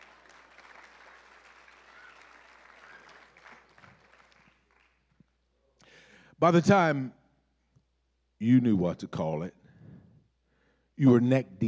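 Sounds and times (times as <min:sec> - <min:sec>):
audience clapping: 0:00.0 - 0:05.4
speech: 0:06.4 - 0:07.2, 0:08.4 - 0:09.6, 0:11.0 - 0:11.6.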